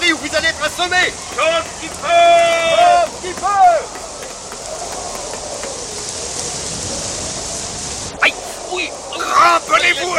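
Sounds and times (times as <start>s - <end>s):
hail falling: 0.0s - 10.1s.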